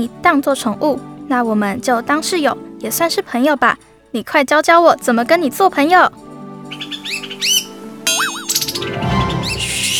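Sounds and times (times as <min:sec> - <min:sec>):
speech: 0:00.0 - 0:06.2
small bird chirping: 0:06.7 - 0:09.9
warbling whistle: 0:07.0 - 0:08.9.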